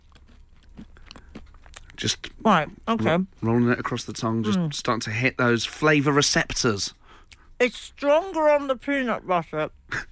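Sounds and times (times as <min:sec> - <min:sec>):
crunchy chewing of a bagel: 0:00.0 - 0:02.3
speech: 0:02.0 - 0:07.0, 0:07.6 - 0:10.1.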